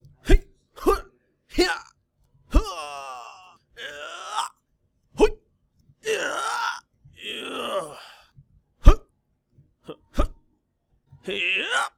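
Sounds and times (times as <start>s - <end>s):
person making effort noises: 0.2s - 1.9s, 2.5s - 4.5s, 6.0s - 9.0s, 9.9s - 10.4s.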